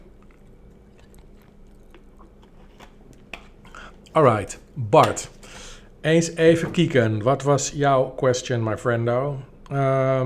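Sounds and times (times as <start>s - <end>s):
person sipping water: 0.0s - 4.1s
speech: 4.2s - 5.4s, 6.0s - 10.2s.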